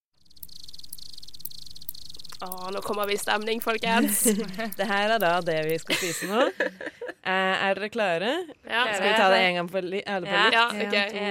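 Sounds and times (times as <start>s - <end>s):
crickets chirping in a high-pitched trill: 0.2s - 6.3s
speech: 2.4s - 11.2s
laughter: 3.8s - 4.9s, 5.9s - 7.2s.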